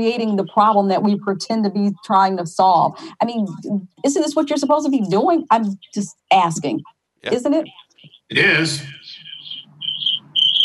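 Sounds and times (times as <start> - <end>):
speech: 0.0 - 9.0
faint low hum: 0.0 - 10.6
cricket chirping: 9.4 - 10.6.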